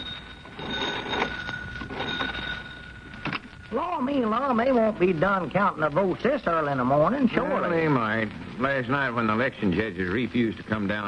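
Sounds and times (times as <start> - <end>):
telephone bell ringing as a phone call is placed from a general store: 0.0 - 4.2
hissy crackling background: 0.0 - 11.0
speech: 3.7 - 11.0.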